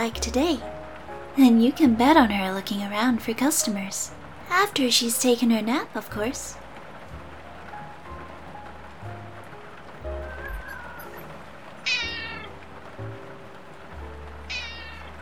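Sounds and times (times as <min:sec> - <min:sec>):
speech: 0:00.0 - 0:00.7, 0:01.4 - 0:06.6
soft steady hiss: 0:00.0 - 0:15.2
cat meowing: 0:10.1 - 0:12.5, 0:14.5 - 0:15.1.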